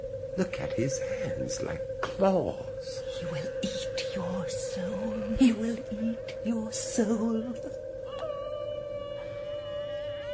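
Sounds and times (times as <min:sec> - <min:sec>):
low rumble of noise: 0:00.0 - 0:10.3
speech: 0:00.4 - 0:07.8
wolf howling: 0:08.0 - 0:10.3.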